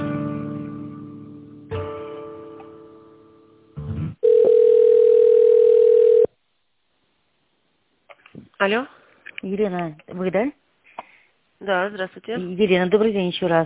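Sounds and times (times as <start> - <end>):
telephone line tone while a call is being transferred: 4.2 - 6.3
speech: 8.6 - 10.6, 11.6 - 13.6.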